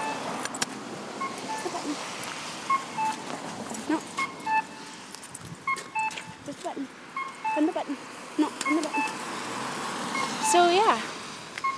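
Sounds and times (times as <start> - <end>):
short electronic beeps from a pedestrian crossing signal: 0.0 - 0.3, 1.2 - 2.0, 2.7 - 3.2, 3.9 - 5.0, 5.6 - 6.6, 7.2 - 9.2, 10.1 - 11.0
steady street traffic noise: 0.0 - 11.7.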